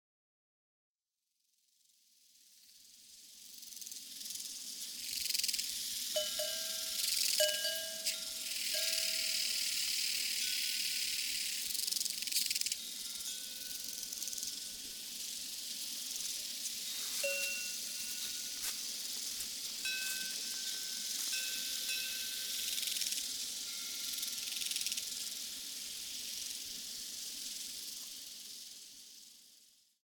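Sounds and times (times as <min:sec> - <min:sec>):
crickets on the evening prairie: 0:02.3 - 0:30.0
cowbells on the evening prairie: 0:06.1 - 0:11.2, 0:12.7 - 0:14.9, 0:16.9 - 0:18.7, 0:19.7 - 0:24.2.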